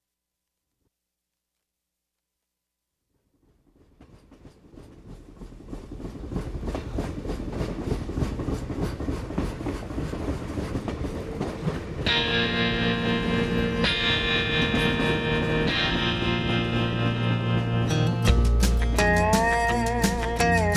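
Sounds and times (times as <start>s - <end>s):
train rolling on rails: 3.4s - 20.7s.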